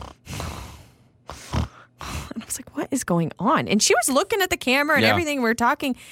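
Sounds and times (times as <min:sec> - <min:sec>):
person imitating dogs snoring loudly while asleep on a Zoom call: 0:00.0 - 0:02.2, 0:05.0 - 0:05.2
speech: 0:02.6 - 0:06.1.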